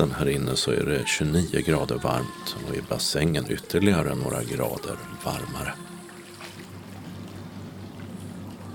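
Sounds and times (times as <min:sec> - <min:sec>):
speech: 0:00.0 - 0:05.9
low continuous hum: 0:00.0 - 0:08.7
water sloshing and lapping in an indoor swimming pool hall: 0:02.1 - 0:08.7
soft splashes in swimming pool: 0:02.2 - 0:08.7.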